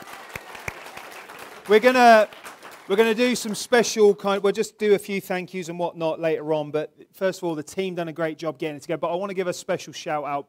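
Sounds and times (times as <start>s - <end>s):
audience clapping: 0.0s - 3.9s
speech: 1.7s - 10.4s.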